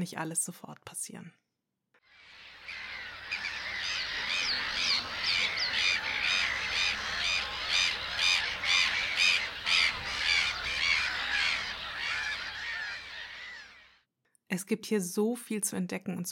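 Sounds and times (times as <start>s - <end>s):
speech: 0.0s - 1.4s, 14.5s - 16.3s
dense flock of gulls calling: 2.2s - 14.0s.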